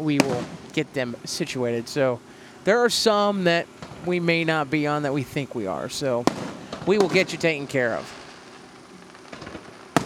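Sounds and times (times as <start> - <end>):
sharp loud firework bang: 0.0 - 0.9, 3.8 - 4.3, 6.2 - 10.0
speech: 0.0 - 8.2
crackling firework pops: 0.0 - 10.0.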